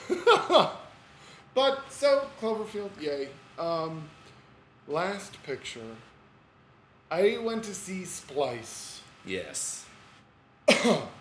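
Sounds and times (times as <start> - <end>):
speech: 0.4 - 0.8, 1.6 - 4.2, 4.9 - 6.1, 7.1 - 9.9, 10.7 - 11.1
man clearing his throat: 10.7 - 11.1.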